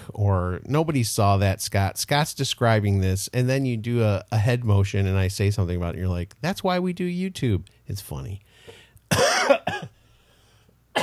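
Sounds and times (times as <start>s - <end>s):
speech: 0.2s - 8.5s, 9.1s - 9.4s
person coughing harshly: 9.1s - 10.0s.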